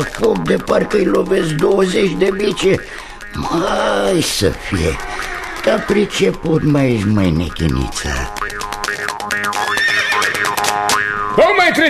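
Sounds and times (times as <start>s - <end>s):
speech: 0.0s - 9.4s, 11.4s - 11.8s
horses pulling a horse-drawn ride neighing: 0.0s - 10.7s.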